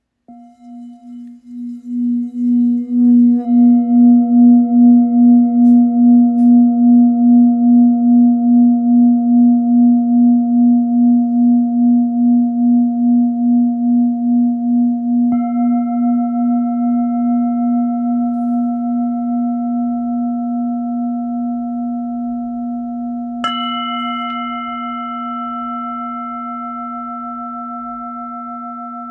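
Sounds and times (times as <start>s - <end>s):
1.37kg full moon singing bowl in A sharp: 0.0s - 29.0s.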